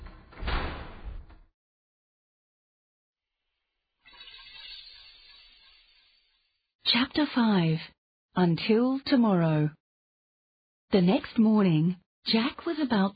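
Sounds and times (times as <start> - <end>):
door slamming shut with a heavy bang: 0.0 - 1.4
speech: 6.9 - 9.8, 10.9 - 13.1.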